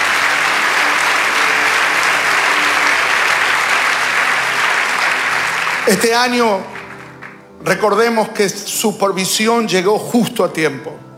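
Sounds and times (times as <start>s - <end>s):
audience applause at a sermon: 0.0s - 8.2s
speech: 5.9s - 6.7s, 7.6s - 11.1s.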